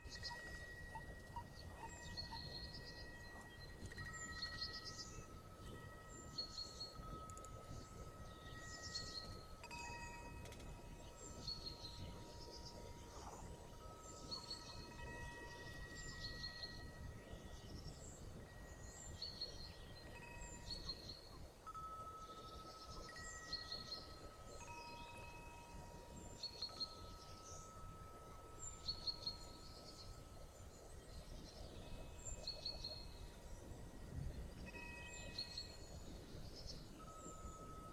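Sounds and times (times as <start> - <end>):
forest ambience: 0.0 - 37.9.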